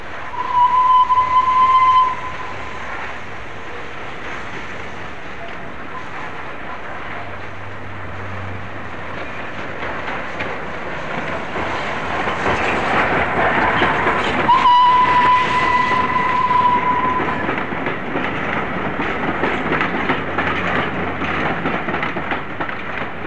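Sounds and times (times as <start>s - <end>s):
steam train rumble and clatter pulling into a station: 0.0s - 23.2s
shrill steam train whistle blast: 0.3s - 3.0s, 14.5s - 17.4s.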